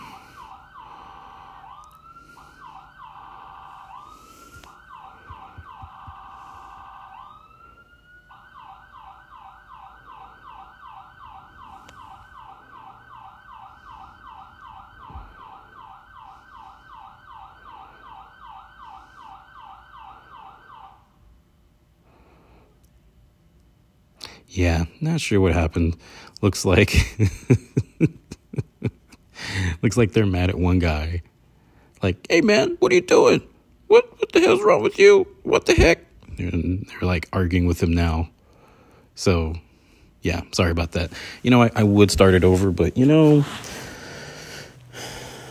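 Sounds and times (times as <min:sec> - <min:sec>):
loud ambulance siren wailing and yelping: 0:00.0 - 0:21.3, 0:40.8 - 0:45.4
speech: 0:24.5 - 0:28.2, 0:29.8 - 0:31.3, 0:32.0 - 0:38.4, 0:39.2 - 0:39.6, 0:40.2 - 0:43.7.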